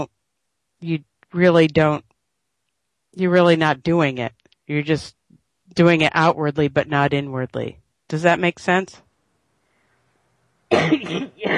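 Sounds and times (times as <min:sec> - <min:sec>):
speech: 0:00.8 - 0:02.1, 0:03.1 - 0:09.0, 0:10.7 - 0:11.5
person coughing: 0:10.7 - 0:11.5.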